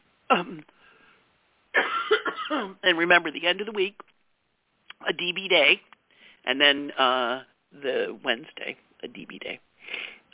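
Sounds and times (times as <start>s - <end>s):
speech: 0.3s - 0.8s, 2.5s - 4.1s, 5.0s - 10.2s
harsh coughs: 1.7s - 2.8s.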